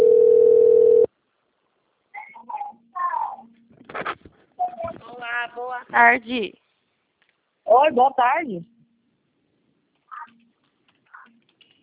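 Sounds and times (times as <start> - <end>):
telephone ringback tone while placing an outgoing call: 0.0 - 1.1
speech: 5.6 - 6.6, 7.7 - 8.7.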